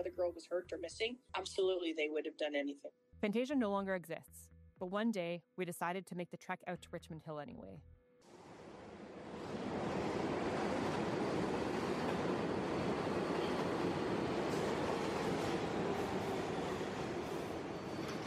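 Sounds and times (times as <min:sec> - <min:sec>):
speech: 0:00.0 - 0:08.4
subway train in motion rumbling and rattling: 0:08.3 - 0:18.2.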